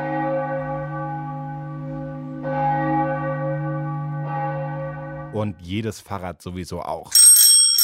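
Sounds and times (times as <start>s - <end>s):
large church bell tolling: 0.0s - 5.4s, 7.2s - 7.8s
speech: 5.4s - 7.3s.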